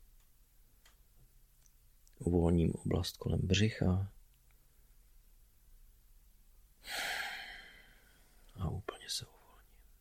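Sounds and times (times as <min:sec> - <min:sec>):
speech: 0:02.2 - 0:04.2, 0:09.1 - 0:09.4
slow inhale and long exhale during a relaxation exercise: 0:06.8 - 0:08.4.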